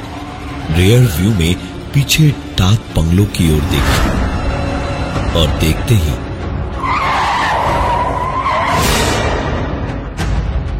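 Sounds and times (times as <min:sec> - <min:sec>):
road noise: 0:00.0 - 0:10.0
speech: 0:00.8 - 0:04.2, 0:05.3 - 0:06.3
fast car tires screeching in a skid: 0:06.8 - 0:09.5.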